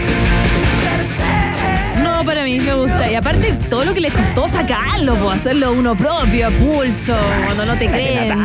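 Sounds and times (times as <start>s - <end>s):
distorted guitar in protopunk rock: 0.0s - 8.4s
drums in protopunk rock: 0.0s - 8.4s
strained wavering vocal line: 0.7s - 6.0s, 7.1s - 8.4s
speech: 3.2s - 8.4s.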